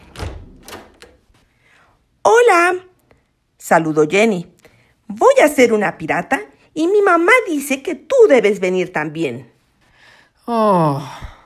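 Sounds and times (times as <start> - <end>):
door opening with clunks and rattles: 0.0 - 1.2
speech: 3.7 - 4.5, 5.1 - 9.5, 10.5 - 11.3.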